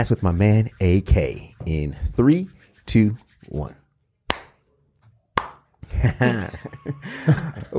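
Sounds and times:
speech: 0:00.0 - 0:03.8, 0:05.9 - 0:07.7
sharp loud hand claps to sync video and audio: 0:04.3 - 0:04.6, 0:05.4 - 0:05.7
laughter: 0:05.8 - 0:07.7.

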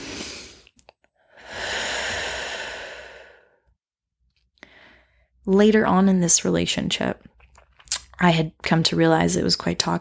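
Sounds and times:
deep breath in: 0:01.3 - 0:03.7, 0:04.6 - 0:05.4
speech: 0:05.5 - 0:07.4, 0:08.2 - 0:09.9.

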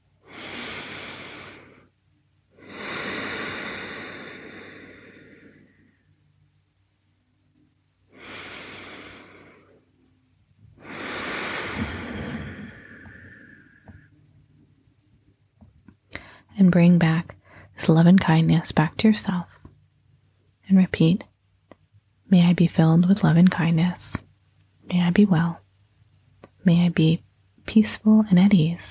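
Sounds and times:
slow deep breaths during a guided breathing exercise: 0:00.2 - 0:06.2, 0:08.1 - 0:10.1, 0:10.7 - 0:14.2, 0:16.1 - 0:16.5
speech: 0:16.6 - 0:19.6, 0:20.8 - 0:21.3, 0:22.3 - 0:24.2, 0:24.9 - 0:25.6, 0:26.6 - 0:28.8.

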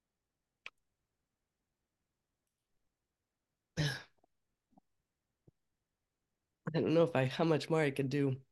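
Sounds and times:
person coughing: 0:03.8 - 0:04.2
speech: 0:06.7 - 0:08.5.

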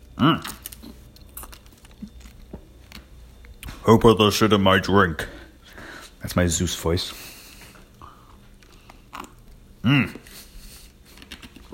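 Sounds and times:
biting and chewing frozen almond milk: 0:00.0 - 0:03.8, 0:07.7 - 0:11.7
speech: 0:00.2 - 0:00.6, 0:03.9 - 0:05.4, 0:06.3 - 0:07.3.

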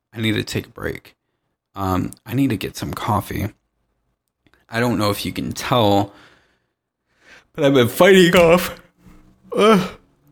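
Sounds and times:
speech: 0:00.2 - 0:01.2, 0:01.8 - 0:03.6, 0:04.7 - 0:06.3, 0:07.5 - 0:08.8, 0:09.5 - 0:10.0
person yawning: 0:09.5 - 0:10.0.

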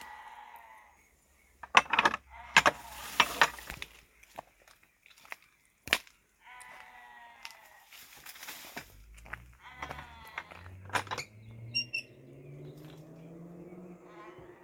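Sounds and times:
sheep bleating in Welsh countryside: 0:00.0 - 0:01.1, 0:02.2 - 0:03.7, 0:06.4 - 0:08.3, 0:09.0 - 0:10.9, 0:13.9 - 0:14.6
sharp clicks and knocks: 0:01.6 - 0:03.9, 0:09.8 - 0:11.7.

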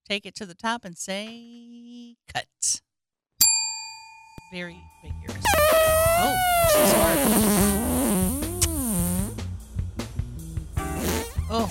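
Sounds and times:
speech: 0:00.1 - 0:02.9, 0:04.5 - 0:08.4
long buzzy fart: 0:05.4 - 0:09.5, 0:10.8 - 0:11.6.

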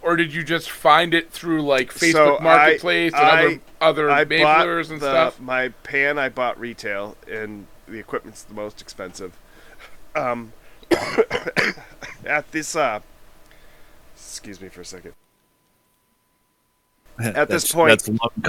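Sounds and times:
speech: 0:00.1 - 0:09.4, 0:10.1 - 0:13.1, 0:14.2 - 0:15.2, 0:17.2 - 0:18.4
person coughing from steam of boiling maple syrup: 0:10.9 - 0:12.3
throat clearing: 0:10.9 - 0:12.3.

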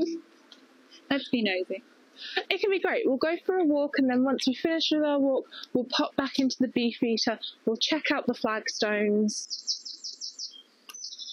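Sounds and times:
faint outdoor background: 0:00.0 - 0:11.3
speech: 0:01.1 - 0:09.8
bright bird chirps along a walking path away from a road: 0:09.4 - 0:11.3.

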